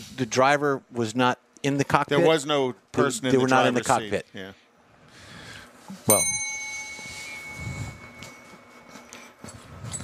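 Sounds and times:
speech: 0.2 - 4.6, 5.9 - 6.4
bicycle bell ringing: 6.1 - 10.0.

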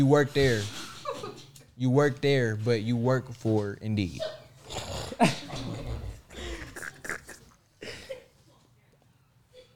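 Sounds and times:
speech: 0.0 - 0.8, 1.8 - 4.4, 5.2 - 5.8
dog growling: 4.6 - 7.4.

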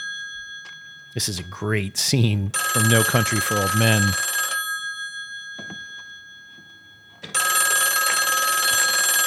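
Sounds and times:
old-fashioned heavy telephone bell ringing: 0.0 - 1.6, 2.5 - 9.2
speech: 1.2 - 4.2.

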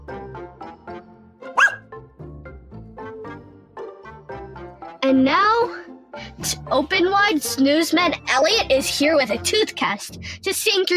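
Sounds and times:
small dog barking: 1.5 - 1.9
speech: 5.0 - 5.8, 6.4 - 10.9.

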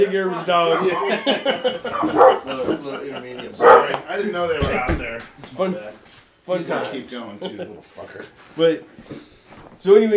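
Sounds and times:
laughter: 0.0 - 4.9, 6.9 - 8.3
speech: 0.0 - 10.1
dog barking and yipping: 0.7 - 2.5, 3.6 - 4.0.

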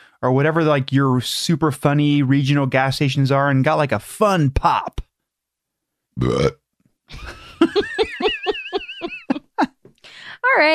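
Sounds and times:
speech: 0.2 - 5.0, 6.2 - 8.4, 10.5 - 10.7
person burping: 6.2 - 6.6
laughter: 7.1 - 9.7.

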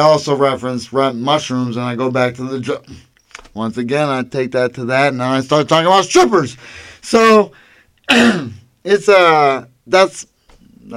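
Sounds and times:
speech: 0.0 - 10.9
throat clearing: 8.1 - 8.7.

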